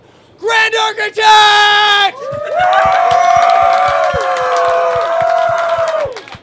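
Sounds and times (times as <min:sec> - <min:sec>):
speech: 0:00.7 - 0:03.3
people cheering and whooping: 0:01.7 - 0:06.4
hand-clapping applause: 0:02.2 - 0:06.4.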